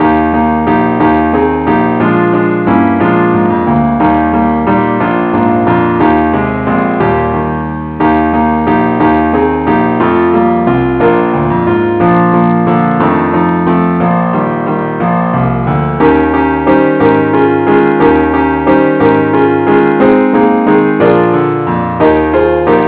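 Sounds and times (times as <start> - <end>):
keyboard playing in E flat: 0.0 - 22.8.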